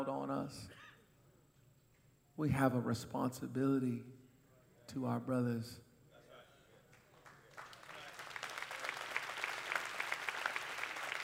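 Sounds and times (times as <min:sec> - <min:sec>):
speech: 0:00.0 - 0:00.9, 0:02.4 - 0:04.2, 0:04.9 - 0:05.9
crowd applauding: 0:06.9 - 0:11.2.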